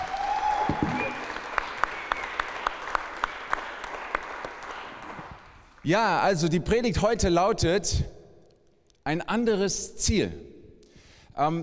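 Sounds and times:
audience applauding: 0.0s - 5.9s
speech: 5.8s - 8.2s, 9.0s - 10.5s, 11.4s - 11.6s.

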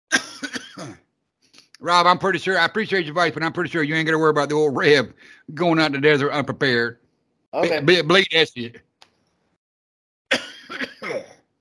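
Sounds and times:
rough throaty hacking cough: 0.1s - 1.1s, 10.3s - 11.5s
speech: 0.8s - 1.1s, 1.8s - 8.9s.

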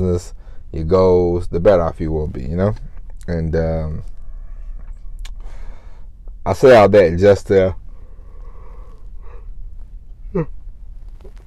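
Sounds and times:
speech: 0.0s - 4.1s, 6.4s - 7.8s, 10.3s - 10.6s
person yawning: 10.2s - 10.6s.

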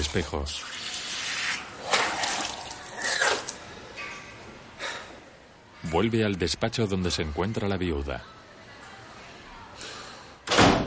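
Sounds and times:
speech: 0.0s - 0.8s, 5.9s - 8.4s
water splashing at a bathroom sink as someone washes their face: 0.6s - 3.6s.

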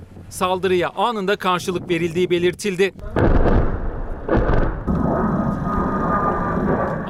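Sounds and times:
speech: 0.3s - 3.4s
artillery and mortar fire blasts: 3.0s - 7.0s
rumbling roar of artillery and mortar fire: 3.0s - 7.0s.

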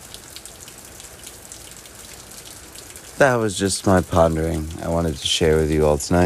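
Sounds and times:
steady rain falling: 0.0s - 6.2s
speech: 3.2s - 6.2s.

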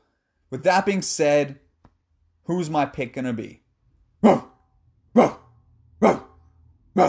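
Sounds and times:
speech: 0.5s - 1.6s, 2.5s - 3.6s, 4.2s - 4.5s, 5.2s - 5.4s, 6.0s - 6.3s
dogs barking: 5.2s - 7.0s.

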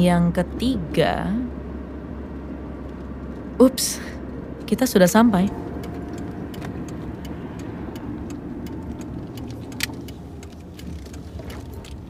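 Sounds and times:
speech: 0.0s - 1.4s, 3.6s - 5.6s
low constant car engine rumble inside the vehicle: 0.0s - 12.0s
car turn signal ticking from the dashboard: 1.6s - 12.0s.

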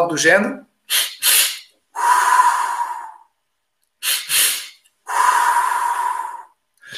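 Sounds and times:
speech: 0.0s - 1.1s
two short sharp inhales and a longer slower exhale: 0.9s - 3.3s, 4.0s - 6.9s.

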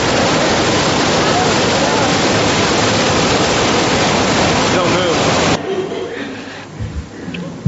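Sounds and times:
swollen flooded river rushing past: 0.0s - 5.6s
laughter: 5.6s - 6.6s.

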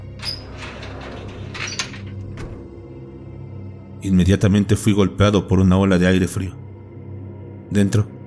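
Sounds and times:
sharp clicks and knocks of heavy door: 0.0s - 2.9s
heavy door creaking and scraping open: 0.0s - 3.3s
speech: 4.0s - 6.6s, 7.7s - 8.2s.

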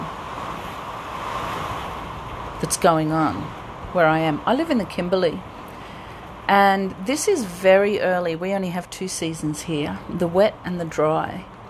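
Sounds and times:
heavy tropical rain pouring: 0.0s - 8.2s
speech: 2.6s - 5.5s, 6.5s - 11.5s.

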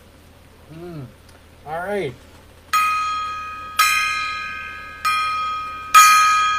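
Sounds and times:
speech: 0.7s - 2.3s
metal gong being struck: 2.7s - 6.5s.

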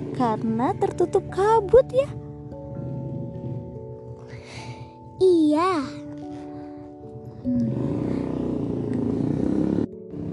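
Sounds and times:
motorcycle engine droning while passing on roadside: 0.0s - 4.0s, 7.4s - 10.3s
quieter roadside background: 0.0s - 10.3s
speech: 0.2s - 2.2s, 5.2s - 6.0s.

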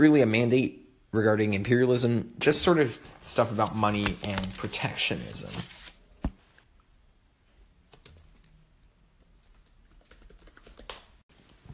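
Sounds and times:
speech: 0.0s - 5.8s
computer keyboard typing: 7.9s - 8.5s, 9.4s - 11.1s.

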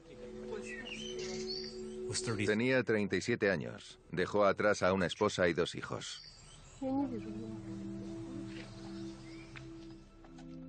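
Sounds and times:
faint birds chirping and twittering: 0.0s - 10.2s
speech: 2.1s - 8.0s.

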